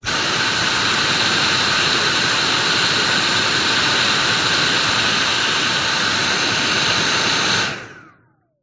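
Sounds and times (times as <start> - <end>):
Dyson V7 stick vacuum cleaner suction burst close to end of open hose: 0.0 - 8.3.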